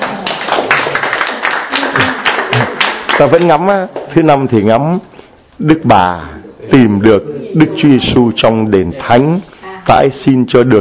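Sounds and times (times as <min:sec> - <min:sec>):
crowd applause: 0:00.0 - 0:03.6
speech: 0:03.2 - 0:10.7.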